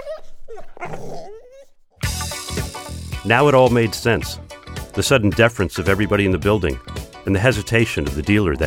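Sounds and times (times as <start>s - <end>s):
young pit bulls growling: 0.0s - 2.2s
speech: 3.2s - 4.4s, 5.0s - 8.6s.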